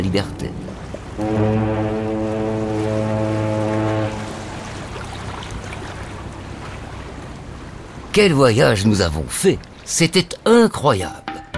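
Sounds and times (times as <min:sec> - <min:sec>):
speech: 0:00.0 - 0:01.8, 0:08.2 - 0:11.2
boat engine rumble: 0:00.0 - 0:09.8
water: 0:00.0 - 0:11.4
boat horn blast: 0:01.1 - 0:05.0.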